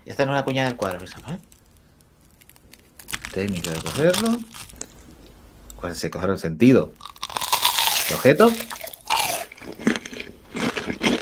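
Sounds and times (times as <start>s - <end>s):
speech: 0.1s - 1.6s, 3.4s - 4.7s, 5.8s - 7.1s, 8.1s - 8.8s
crunchy chewing of a fried churro topped with chocolate: 0.4s - 5.4s, 7.0s - 11.2s.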